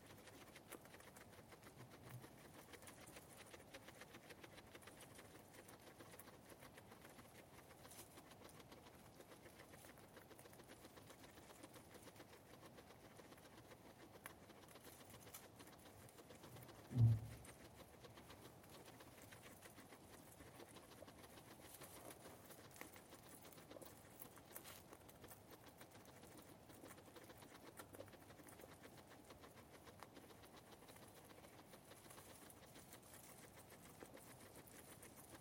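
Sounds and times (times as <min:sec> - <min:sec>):
guinea pig soft low murmurs and chirps: 0:00.0 - 0:35.3
quiet rustling: 0:00.0 - 0:35.3
steady quiet hiss: 0:00.0 - 0:35.3
sharp low thump: 0:16.9 - 0:17.5.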